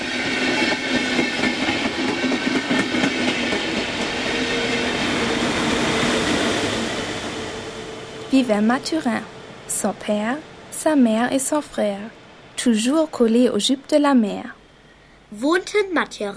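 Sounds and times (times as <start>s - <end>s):
train wheels clickety-clack on railway tracks: 0.0s - 4.5s
train passing on railway tracks: 0.0s - 16.1s
speech: 8.4s - 14.6s, 15.3s - 16.3s.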